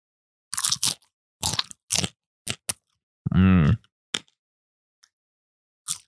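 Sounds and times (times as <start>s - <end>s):
popcorn being chewed close to microphone: 0.6s - 2.8s, 5.9s - 6.0s
voiced murmur: 3.3s - 3.8s.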